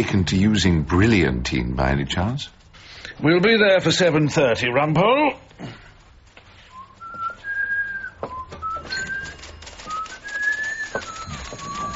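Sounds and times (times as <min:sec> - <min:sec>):
speech: 0:00.0 - 0:02.6, 0:03.2 - 0:05.8
steady hiss: 0:00.0 - 0:11.9
man whistling a wavering off-key tune: 0:06.7 - 0:11.9
faint clicks: 0:08.7 - 0:11.9.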